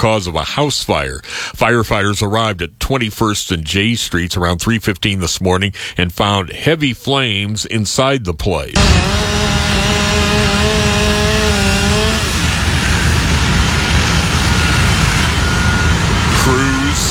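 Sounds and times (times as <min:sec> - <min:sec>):
speech: 0:00.0 - 0:10.0
chainsaw cutting through a house roof: 0:08.8 - 0:17.0.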